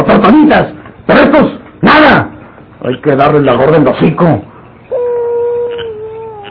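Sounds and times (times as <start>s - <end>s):
speech: 0.0s - 4.5s
dog whimpering: 4.9s - 6.4s.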